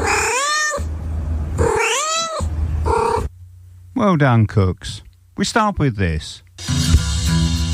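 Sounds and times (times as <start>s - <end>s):
cat meowing: 0.0s - 0.9s, 1.6s - 3.3s
low hum: 0.0s - 6.6s
speech: 4.0s - 7.6s.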